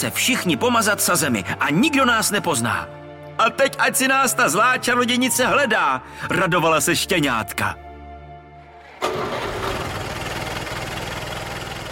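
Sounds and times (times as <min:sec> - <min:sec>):
speech: 0:00.0 - 0:07.8
car engine starting and idling: 0:08.6 - 0:11.9.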